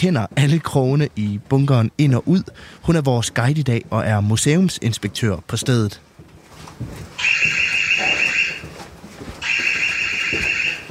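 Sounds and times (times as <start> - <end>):
speech: 0.0 - 6.1, 6.8 - 7.6
faint noise: 0.0 - 10.8
museum barrier proximity alarm in a bunker, shrill electronic warbling: 7.2 - 8.7, 9.4 - 10.8.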